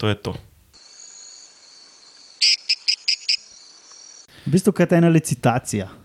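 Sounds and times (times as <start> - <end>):
speech: 0.0 - 0.5, 4.5 - 6.0
male frogs calling back and forth with sharp high-pitched clicks: 0.8 - 4.3.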